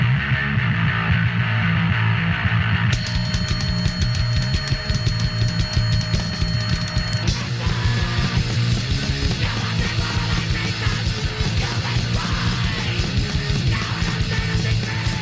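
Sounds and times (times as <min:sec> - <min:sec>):
distorted buzzing guitars: 0:00.0 - 0:15.2
pounding drums: 0:03.0 - 0:15.2
harsh screamed hardcore punk vocals: 0:09.4 - 0:15.2.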